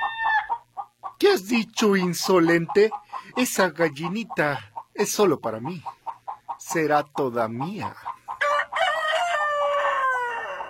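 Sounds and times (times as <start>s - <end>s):
rooster crowing in a henhouse: 0.0s - 0.6s, 8.4s - 10.6s
speech: 1.2s - 6.0s, 6.7s - 8.1s.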